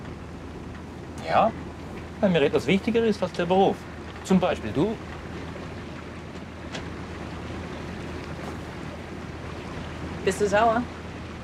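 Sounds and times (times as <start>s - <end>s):
boat rumbling on open water: 0.0s - 11.4s
brief splashy bursts: 0.0s - 11.4s
washing waves: 0.0s - 11.4s
speech: 1.3s - 1.6s, 2.2s - 5.2s, 10.3s - 11.0s.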